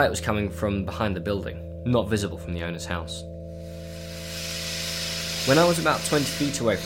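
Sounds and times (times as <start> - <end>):
speech: 0.0 - 3.3, 5.5 - 6.8
low mechanical hum: 0.0 - 6.8
steady hiss behind a barn on a farm: 3.6 - 6.8.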